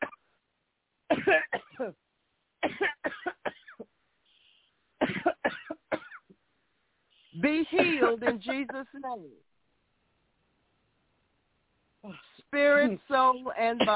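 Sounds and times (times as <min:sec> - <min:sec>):
person coughing harshly during a prayer: 0:01.1 - 0:02.0, 0:02.6 - 0:03.9, 0:05.0 - 0:06.3, 0:07.8 - 0:08.9
speech: 0:01.3 - 0:02.1, 0:08.0 - 0:09.5, 0:12.0 - 0:13.9.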